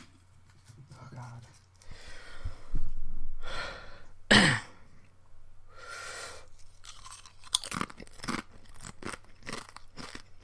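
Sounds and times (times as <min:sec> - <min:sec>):
breathy swells: 0:01.8 - 0:04.2, 0:05.7 - 0:06.6
chewing crunchy spicy chips: 0:06.5 - 0:10.4.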